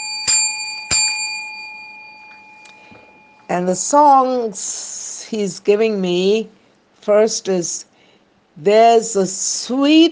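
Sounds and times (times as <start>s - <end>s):
small bell ringing: 0.0s - 3.8s
speech: 3.5s - 7.9s, 8.6s - 10.1s.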